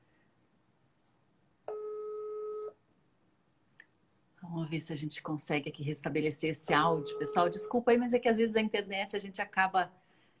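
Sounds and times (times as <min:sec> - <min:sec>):
steady two-pitch telephone tone while dialing a call: 0:01.7 - 0:02.8, 0:06.9 - 0:07.8
speech: 0:04.6 - 0:10.0.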